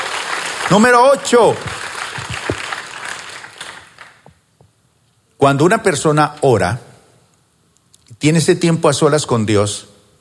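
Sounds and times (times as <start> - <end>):
audience applauding: 0.0 - 4.3
speech: 0.7 - 1.8, 5.4 - 6.9, 8.2 - 9.9.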